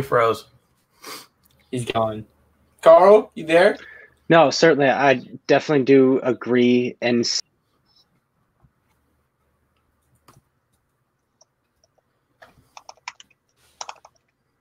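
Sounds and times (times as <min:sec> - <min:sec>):
speech: 0:00.0 - 0:07.5
computer keyboard typing: 0:11.8 - 0:14.3.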